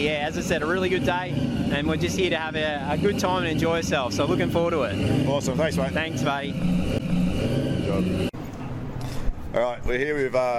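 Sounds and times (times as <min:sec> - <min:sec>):
speech: 0:00.0 - 0:07.0, 0:09.5 - 0:10.5
1956 Chevy pickup truck engine revving in a car park: 0:00.0 - 0:08.4.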